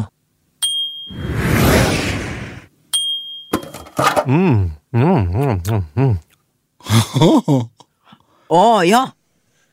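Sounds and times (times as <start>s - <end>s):
bright electronic ding: 0.6s - 1.2s
fast airplane whooshing past: 1.1s - 2.7s
speech: 4.2s - 6.2s, 6.8s - 7.8s, 8.5s - 9.2s.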